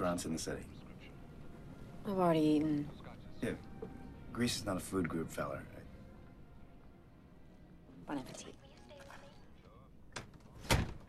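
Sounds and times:
speech: 0.0s - 0.9s, 2.0s - 5.7s, 8.1s - 8.6s
faint voices: 0.0s - 5.9s, 8.1s - 11.0s
door swinging shut with a sharp solid thud: 10.2s - 11.0s.

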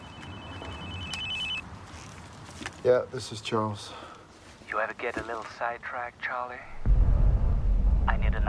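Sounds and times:
cell phone ringing with a high electronic ringtone: 0.0s - 1.6s
speech: 2.8s - 4.1s, 4.7s - 6.7s
low rumble: 6.8s - 8.4s.

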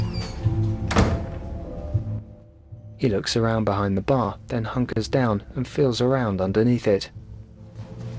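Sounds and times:
bathroom door in a bar thudding shut: 0.2s - 1.5s
speech: 3.0s - 7.2s.

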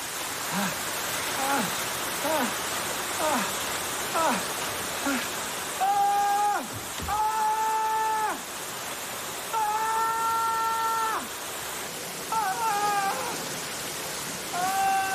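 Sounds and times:
water pouring down indoors: 0.0s - 15.1s.

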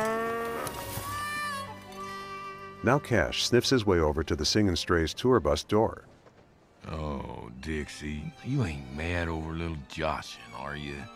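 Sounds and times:
cow mooing as it passes by: 0.0s - 0.9s
speech: 2.8s - 6.2s, 6.9s - 11.1s.

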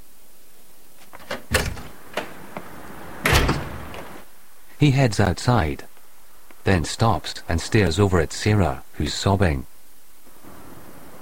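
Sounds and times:
glass door being opened, clicking and rattling: 1.0s - 4.2s
speech: 4.8s - 5.9s, 6.6s - 9.7s.

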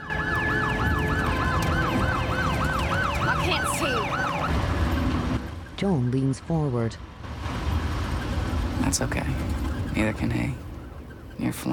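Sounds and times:
police car siren from a squad car chasing a vehicle: 0.0s - 5.2s
engine and road noise on a gravel road: 0.0s - 11.7s
speech: 5.8s - 7.1s, 8.9s - 10.7s, 11.4s - 11.7s.

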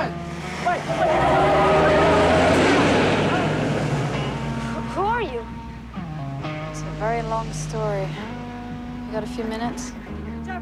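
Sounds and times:
engine roar of a commandeered vehicle speeding off: 0.0s - 9.1s
speech: 9.4s - 10.5s.

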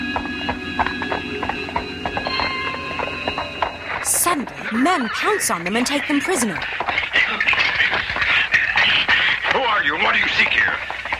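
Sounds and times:
faint high steady tone: 0.0s - 6.6s
horses' hooves walking on a hard surface through an alley: 0.0s - 11.1s
speech: 4.7s - 6.8s.

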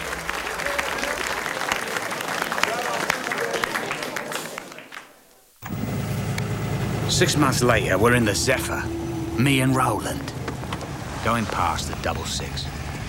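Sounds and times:
crowd applause with hands clapping: 0.0s - 13.0s
low rumbling background: 5.7s - 13.0s
speech: 7.2s - 10.4s, 11.2s - 12.8s.

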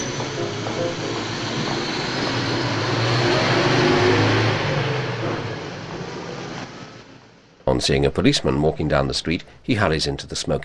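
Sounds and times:
post office van driving past on a road: 0.0s - 7.0s
speech: 7.8s - 10.6s.

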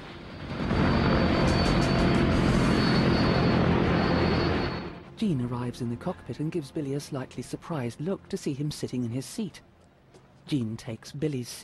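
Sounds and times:
airplane taking off with loud broad engine roar: 0.0s - 7.2s
speech: 5.2s - 9.7s, 10.5s - 11.6s.

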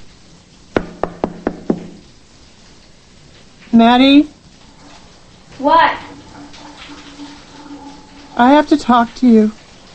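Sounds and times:
knocking on a closed bedroom door: 0.7s - 2.0s
speech: 3.7s - 4.4s, 5.6s - 6.0s, 8.4s - 9.6s.

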